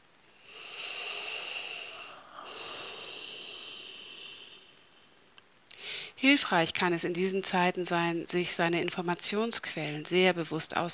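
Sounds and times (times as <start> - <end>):
slow deep breath: 0.3 - 6.2
speech: 6.2 - 10.9.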